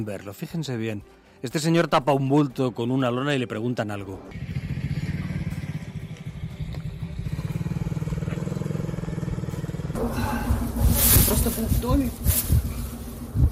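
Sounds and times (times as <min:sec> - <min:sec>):
speech: 0:00.0 - 0:04.6, 0:11.3 - 0:12.7
small motorcycle engine on a rubble-strewn street in Ukraine: 0:04.3 - 0:10.6
street clatter: 0:04.3 - 0:13.4.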